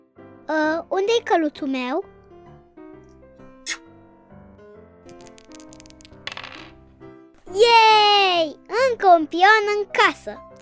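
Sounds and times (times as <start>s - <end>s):
speech: 0.5s - 2.1s, 7.6s - 7.8s, 8.9s - 10.5s
dice rolled during a board game: 5.1s - 6.8s.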